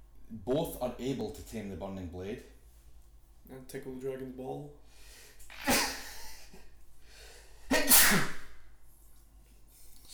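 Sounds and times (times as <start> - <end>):
speech: 0.3 - 2.6, 3.5 - 5.8
person sneezing: 5.5 - 6.4, 7.7 - 8.6.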